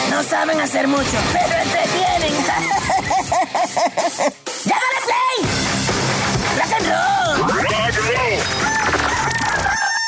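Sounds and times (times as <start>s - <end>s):
speech: 0.2s - 5.6s, 6.7s - 9.0s
laughter: 1.2s - 4.6s
rooster crowing: 8.5s - 10.0s.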